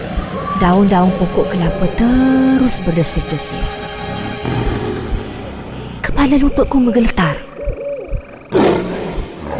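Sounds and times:
low rumbling and tonal sounds: 0.0 - 9.5
speech: 0.6 - 3.8, 6.2 - 7.5
tiger roaring and growling: 4.0 - 5.8, 8.5 - 9.5.

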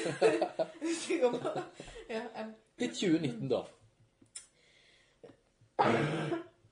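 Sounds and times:
laughter: 0.0 - 2.2
speech: 0.0 - 3.8, 5.8 - 6.5
breathy throat sounds: 5.2 - 6.6
loud harsh cough: 5.8 - 6.6.

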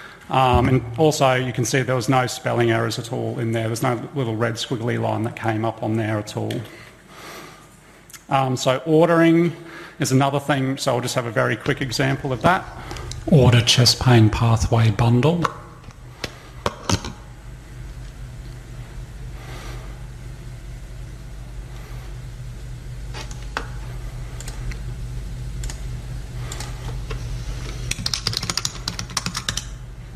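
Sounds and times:
speech: 0.3 - 6.9, 8.3 - 15.6
computer keyboard typing: 27.9 - 29.8.

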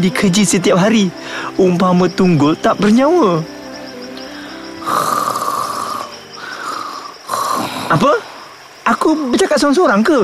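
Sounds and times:
speech: 0.0 - 3.6, 8.9 - 10.2
snoring: 4.8 - 8.0.

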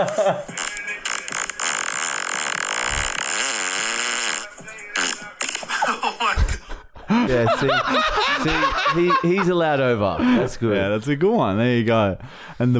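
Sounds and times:
speech: 0.0 - 0.7, 7.1 - 12.7
laughter: 0.0 - 0.8, 5.6 - 10.7
recorded long buzzy fart played back: 0.5 - 5.7.

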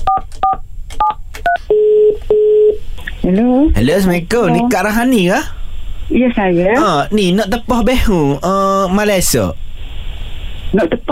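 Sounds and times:
telephone ringing tones: 1.5 - 2.8
speech: 3.3 - 9.7, 10.7 - 11.0.

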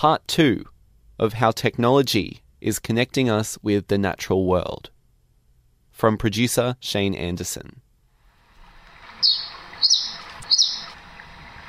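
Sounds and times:
speech: 0.0 - 4.9, 6.0 - 7.8
soft steady wash of noise: 0.0 - 11.6
birds twittering in rainforest trees: 9.1 - 11.0.

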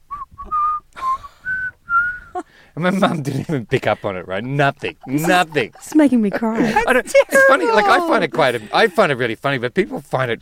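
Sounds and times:
person whistling a cheerful birthday melody: 0.1 - 2.4
laughter: 2.3 - 9.2
speech: 2.8 - 10.3.

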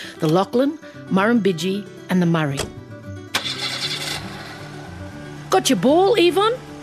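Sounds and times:
speech: 0.2 - 2.8, 5.5 - 6.7
family car engine cranking and starting: 2.6 - 6.8
family car engine idling: 3.3 - 6.8.

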